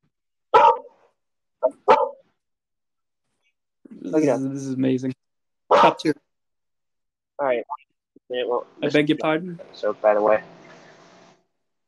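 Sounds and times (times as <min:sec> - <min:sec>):
dog barking: 0:00.5 - 0:01.0, 0:01.6 - 0:02.3, 0:05.7 - 0:06.1
speech: 0:04.1 - 0:05.2, 0:05.8 - 0:06.2, 0:07.4 - 0:10.6.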